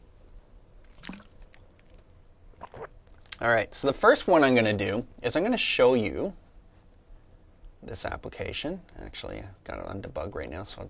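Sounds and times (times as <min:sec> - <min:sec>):
person taking a swig of water: 0:00.9 - 0:01.9, 0:02.6 - 0:03.4
speech: 0:03.4 - 0:06.4, 0:07.9 - 0:10.8.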